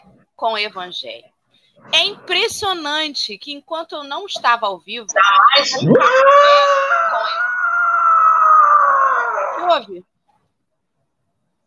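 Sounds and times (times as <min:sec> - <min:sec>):
speech: 0:00.4 - 0:07.5, 0:09.7 - 0:10.1
neighborhood dogs howling and barking: 0:05.2 - 0:09.7.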